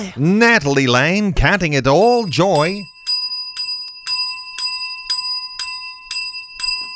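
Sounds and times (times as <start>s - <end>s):
speech: 0.2s - 2.9s
bright bell ringing: 1.9s - 6.9s.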